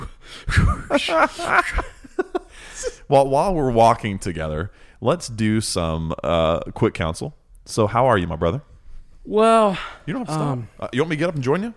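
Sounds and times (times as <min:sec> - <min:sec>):
person breathing heavily with voiced gasps and huffs: 0:00.0 - 0:01.5, 0:02.4 - 0:03.1
speech: 0:00.4 - 0:01.9, 0:02.8 - 0:11.7
laughter: 0:00.6 - 0:03.0.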